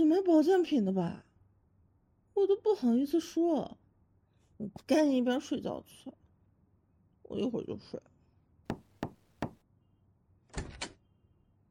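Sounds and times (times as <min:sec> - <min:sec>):
speech: 0:00.0 - 0:01.3, 0:02.4 - 0:03.8, 0:04.6 - 0:06.2, 0:07.3 - 0:08.1
firm knocking on a door: 0:08.7 - 0:09.6.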